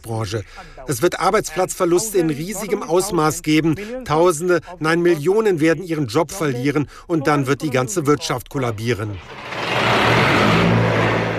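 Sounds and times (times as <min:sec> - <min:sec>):
speech: 0:00.0 - 0:09.6
diesel generator running in a garment factory in Bangladesh: 0:08.2 - 0:11.3.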